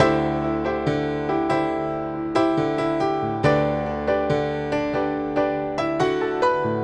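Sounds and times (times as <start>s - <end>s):
classic rock piano music: 0.0s - 6.8s.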